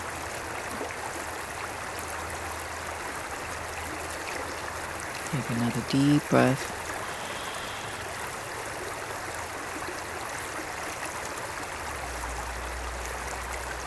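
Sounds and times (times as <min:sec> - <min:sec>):
stream flowing with bubbling water: 0:00.0 - 0:13.8
speech: 0:05.3 - 0:06.8.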